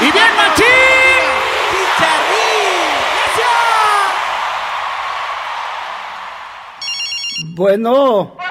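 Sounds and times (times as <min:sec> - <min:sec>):
loud crowd applause: 0:00.0 - 0:06.9
speech: 0:07.6 - 0:08.4.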